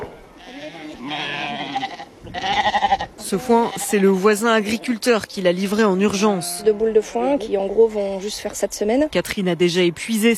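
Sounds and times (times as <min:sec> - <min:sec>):
lambs crying at feeding time: 0:00.4 - 0:04.1
flock of ewes bleating at feeding time: 0:00.4 - 0:04.2, 0:06.1 - 0:07.0
speech: 0:03.3 - 0:10.3.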